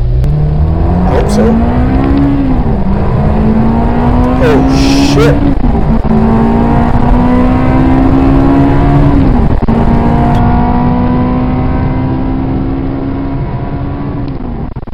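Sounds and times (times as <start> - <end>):
Ferrari sports car engine driving fast heard from the cockpit: 0.0 - 14.7
speech: 5.2 - 5.5.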